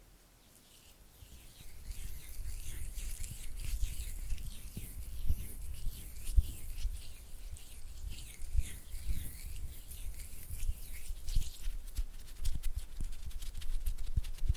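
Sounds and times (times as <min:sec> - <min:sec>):
oily hands rubbing and squelching: 0:00.5 - 0:14.5.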